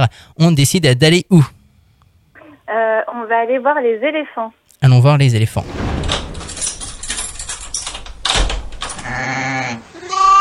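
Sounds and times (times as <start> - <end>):
speech: 0.0 - 1.6, 2.7 - 5.8
sheep bleating: 9.0 - 10.3.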